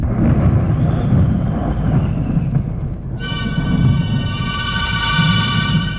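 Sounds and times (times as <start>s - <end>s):
deep rolling thunder as a thunderstorm begins: 0.0s - 5.9s
steady high-pitched tonal sound: 3.2s - 5.9s.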